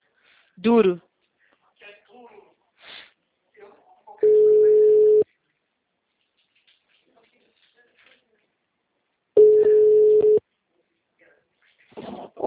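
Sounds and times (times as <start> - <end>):
speech: 0.6 - 1.1
telephone busy tone after a dropped call: 4.2 - 5.2, 9.4 - 10.4.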